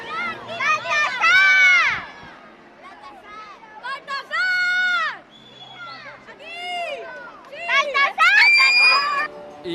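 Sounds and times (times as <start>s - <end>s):
children's chatter: 0.0s - 9.7s
huge crowd of children shouting and screaming outdoors at a parade in Donostia: 8.2s - 9.3s.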